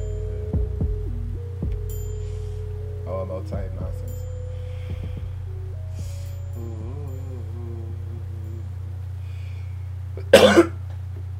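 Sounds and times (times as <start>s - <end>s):
faint steady low hum: 0.0s - 11.3s
speech: 3.4s - 4.1s
person coughing: 10.2s - 10.8s.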